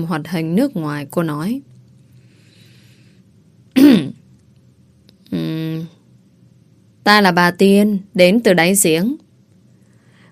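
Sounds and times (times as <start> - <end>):
speech: 0.0 - 1.7, 7.1 - 9.2
woman clearing her throat: 3.7 - 4.2.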